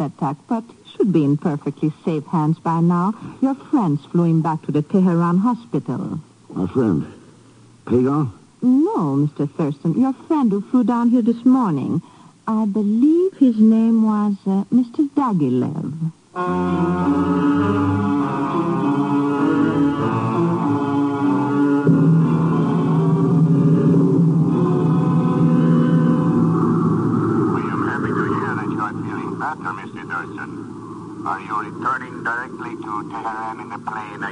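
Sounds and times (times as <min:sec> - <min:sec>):
speech: 0:00.0 - 0:07.2, 0:07.9 - 0:18.0
airplane engine droning in flight: 0:16.5 - 0:34.2.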